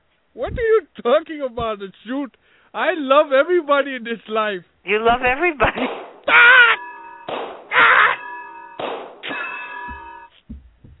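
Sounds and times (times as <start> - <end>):
speech: 0.4 - 6.5
metallic clangs of a blow to the head: 5.9 - 10.9
soft dull low thumps: 9.8 - 10.9.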